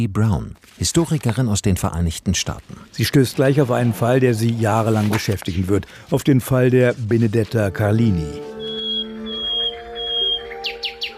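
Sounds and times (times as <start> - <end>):
speech: 0.0 - 8.5
nightingale singing: 7.6 - 11.1.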